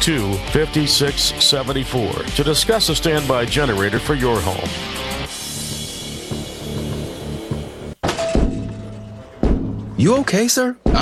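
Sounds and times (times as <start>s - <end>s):
speech: 0.0s - 5.1s, 10.0s - 11.0s
louder knock on glass window with ringing tone: 8.0s - 9.9s
head banging against glass store window: 9.4s - 10.0s.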